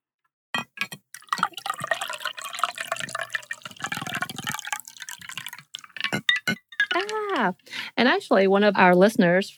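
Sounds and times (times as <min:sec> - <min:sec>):
cocktail pouring into a glass: 0:01.1 - 0:06.2
speech: 0:07.4 - 0:09.5.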